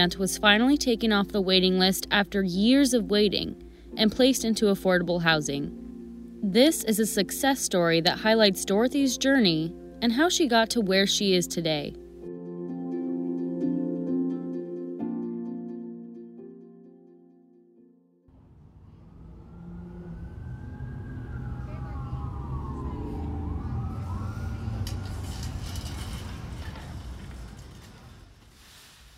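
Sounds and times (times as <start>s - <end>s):
speech: 0.0s - 5.8s, 6.4s - 12.0s
music: 0.0s - 18.3s
street traffic at a mall bus stop: 18.3s - 28.5s
emergency vehicle siren wailing: 18.4s - 26.9s.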